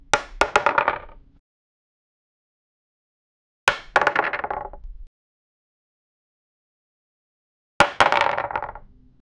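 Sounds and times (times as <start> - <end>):
wooden dice hitting wood: 0.1 - 1.2, 3.7 - 4.9, 7.8 - 8.9.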